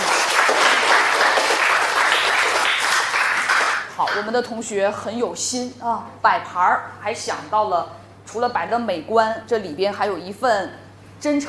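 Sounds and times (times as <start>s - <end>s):
dense applause from a crowd: 0.0s - 3.9s
speech: 4.2s - 11.4s.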